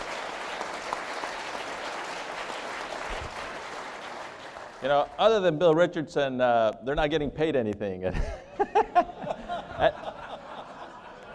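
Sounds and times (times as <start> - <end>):
audience applause: 0.0 - 5.4
speech: 4.8 - 9.1, 9.8 - 10.1
laughter: 8.1 - 11.3.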